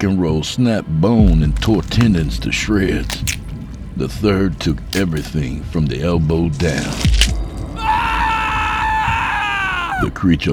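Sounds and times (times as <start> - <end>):
speech: 0.0 - 3.4, 4.0 - 7.4, 10.0 - 10.5
man screaming in agony: 7.8 - 10.2.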